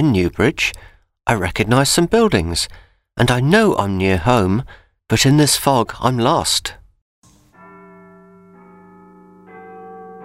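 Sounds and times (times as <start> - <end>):
speech: 0.0 - 6.8
church bell tolling midnight: 7.3 - 10.2.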